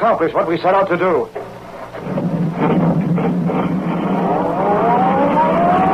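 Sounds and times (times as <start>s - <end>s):
speech: 0.0s - 1.4s
sedan engine roaring along a concrete road: 1.5s - 5.9s.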